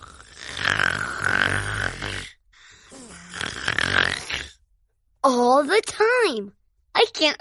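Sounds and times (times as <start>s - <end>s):
loud rattling snores: 0.0s - 4.6s
speech: 5.6s - 7.3s.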